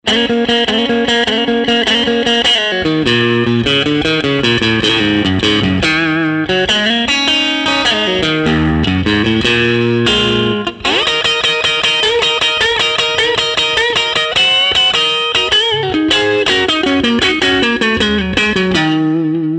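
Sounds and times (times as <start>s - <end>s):
Strat electric guitar through a Vibroverb amp: 0.0s - 19.5s.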